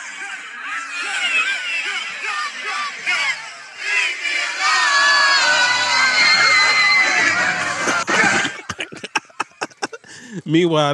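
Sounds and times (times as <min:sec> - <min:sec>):
large concert crowd screaming and shouting: 0:00.0 - 0:09.9
laughter: 0:05.0 - 0:10.5
speech: 0:10.5 - 0:10.9.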